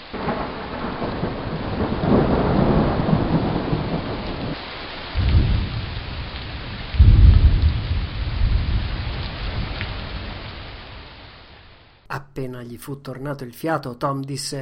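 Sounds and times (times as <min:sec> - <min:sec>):
deep rumbles of thunder: 0:00.0 - 0:11.6
heavy rain pouring in a thunderstorm: 0:00.0 - 0:12.1
loud crack of thunder: 0:00.1 - 0:04.6, 0:05.2 - 0:10.4
speech: 0:12.4 - 0:14.6.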